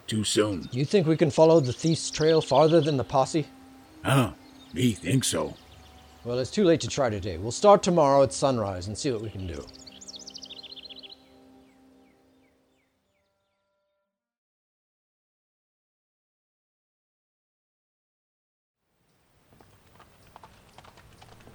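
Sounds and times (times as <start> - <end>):
birds chirping: 0.0 - 13.7, 19.7 - 21.5
speech: 0.1 - 5.6, 6.2 - 9.8
horses' hooves clip-clopping as two riders ride: 19.3 - 21.5.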